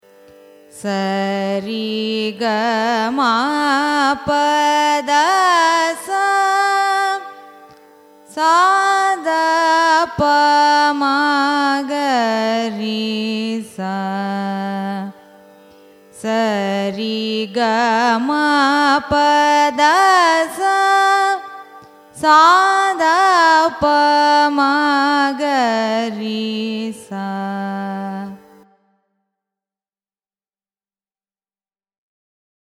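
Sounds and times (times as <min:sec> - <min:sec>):
carnatic raga ascending and descending scale: 0:00.0 - 0:29.1.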